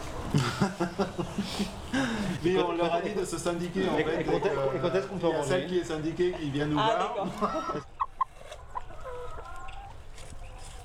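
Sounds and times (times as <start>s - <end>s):
hens clucking in a crowded henhouse: 0.0s - 10.8s
many hens murmuring in a henhouse: 0.0s - 10.8s
laughter: 0.2s - 2.6s, 3.7s - 5.4s, 6.1s - 8.3s
speech: 0.6s - 8.0s.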